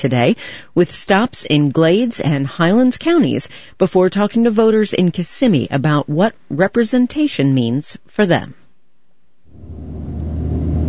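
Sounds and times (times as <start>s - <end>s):
speech: 0.0s - 8.6s
truck engine rumbling heard from inside the cab: 9.5s - 10.8s.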